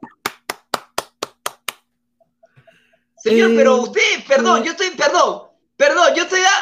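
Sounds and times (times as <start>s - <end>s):
man clapping in celebration of a goal: 0.0s - 1.9s
speech: 3.2s - 6.6s.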